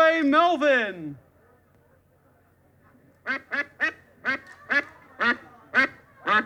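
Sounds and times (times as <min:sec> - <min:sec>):
duck quacking: 0:03.3 - 0:06.4.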